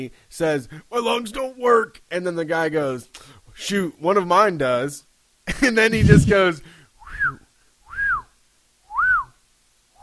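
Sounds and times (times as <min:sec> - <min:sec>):
speech: 0:00.0 - 0:07.4
man whistling: 0:07.0 - 0:08.3, 0:08.9 - 0:09.4.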